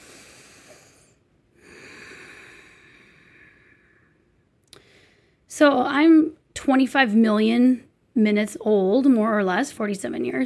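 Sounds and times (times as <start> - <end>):
slow deep breathing: 0.0 - 5.5
speech: 5.6 - 10.4.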